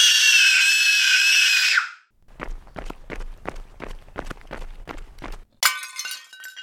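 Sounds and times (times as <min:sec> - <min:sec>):
child's loud shrill scream: 0:00.0 - 0:02.0
stamping feet: 0:02.2 - 0:05.5.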